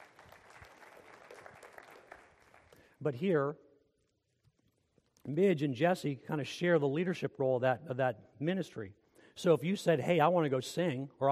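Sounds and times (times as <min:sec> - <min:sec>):
crowd applauding the worship band: 0:00.0 - 0:02.9
speech: 0:03.0 - 0:03.6, 0:05.3 - 0:11.3.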